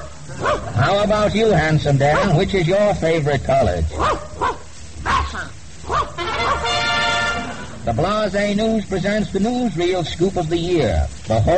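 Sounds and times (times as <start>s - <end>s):
dog barking: 0.0s - 1.0s, 2.1s - 2.4s, 3.5s - 6.8s
speech: 0.3s - 4.3s, 7.9s - 11.5s.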